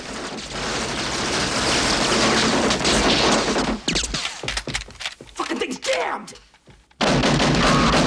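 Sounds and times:
barrage of gunfire from men downstairs: 0.0 - 4.4, 7.0 - 8.0.

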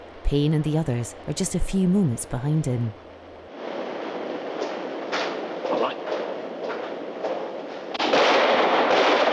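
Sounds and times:
hissing rumbling wash: 0.0 - 9.3
speech: 0.3 - 3.0
gunshots echoing in a sewer tunnel: 4.5 - 9.3.

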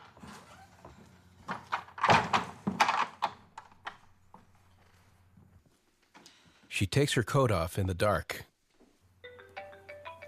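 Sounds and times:
front door opening and closing: 0.0 - 4.5
speech: 6.8 - 8.5.

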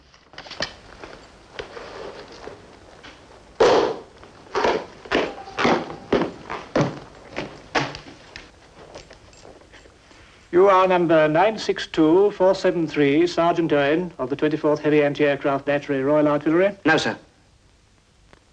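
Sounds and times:
soldier's footsteps marching to the witness stand in a courtroom: 0.7 - 9.7
speech: 10.6 - 17.2.

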